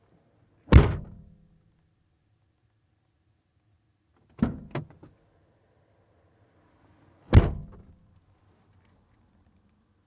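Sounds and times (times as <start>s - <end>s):
car door closing: 0.7s - 1.2s, 7.3s - 7.9s.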